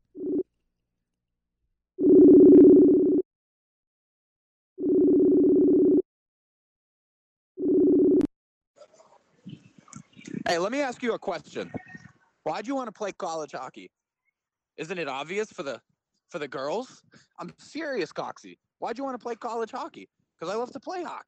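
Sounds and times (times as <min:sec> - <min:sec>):
low buzzy phone ringback tone: 0:00.1 - 0:00.4, 0:02.0 - 0:03.2, 0:04.8 - 0:06.0, 0:07.6 - 0:08.3
speech: 0:10.4 - 0:11.8, 0:12.5 - 0:14.0, 0:14.8 - 0:21.2.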